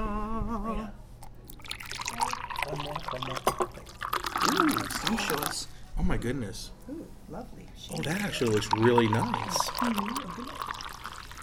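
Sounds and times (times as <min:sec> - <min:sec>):
tea pouring into a cup: 0:01.2 - 0:05.7, 0:07.8 - 0:11.4
speech: 0:03.1 - 0:03.6, 0:05.0 - 0:10.7.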